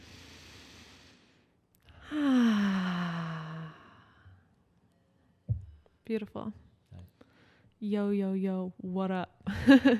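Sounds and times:
faint airy inhale of a deep breath: 0.0 - 4.4, 7.2 - 7.7
speech: 6.1 - 6.7, 7.8 - 9.9.

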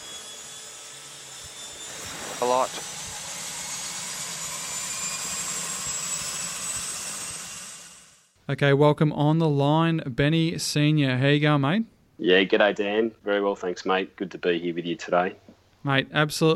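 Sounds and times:
seaplane engine spooling up during start: 0.0 - 8.3
speech: 2.4 - 3.0, 8.5 - 16.5.

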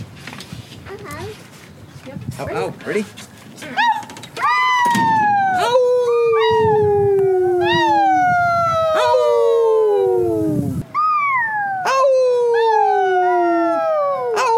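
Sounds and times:
speech: 2.4 - 3.8
people howling like wolves outdoors in Colorado: 3.8 - 14.5.

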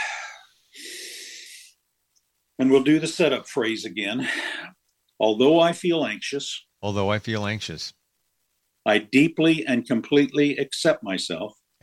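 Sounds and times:
deep breaths taken during a calming exercise for anxiety: 0.0 - 1.8, 4.2 - 4.8
speech: 2.6 - 8.0, 8.8 - 11.8.

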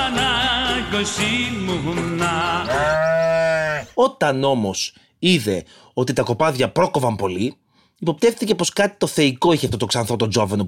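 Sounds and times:
speech: 0.9 - 10.6
sheep bleating: 2.5 - 3.9.

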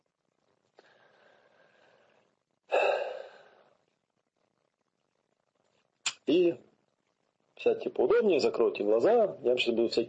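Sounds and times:
deep breath in and out during a guided relaxation exercise: 0.8 - 3.8
speech: 6.3 - 6.7, 7.6 - 10.0.

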